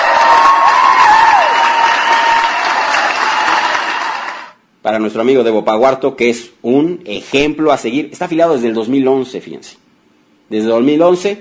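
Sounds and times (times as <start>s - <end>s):
faint whistle or cheer: 0.0s - 4.2s
crowd applauding: 0.0s - 4.6s
speech: 4.9s - 9.8s, 10.5s - 11.4s.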